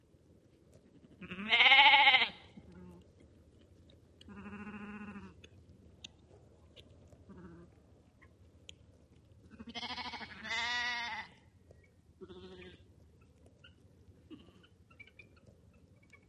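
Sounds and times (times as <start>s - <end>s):
lambs bleating: 1.2s - 3.0s, 4.3s - 5.4s, 7.3s - 7.7s, 9.5s - 11.3s, 12.2s - 12.8s.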